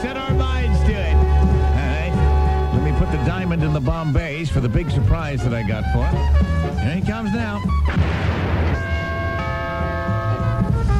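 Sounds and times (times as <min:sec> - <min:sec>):
low rumbling: 0:00.3 - 0:10.9
speech: 0:03.3 - 0:08.5
doorbell ringing after being struck by a gunshot: 0:08.8 - 0:10.9.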